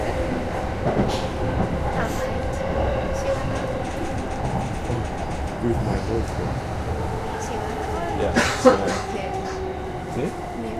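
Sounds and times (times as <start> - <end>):
commuter train rumbling along the tracks: 0.0 - 10.7
speech: 0.8 - 1.4, 5.6 - 6.7, 8.2 - 9.1.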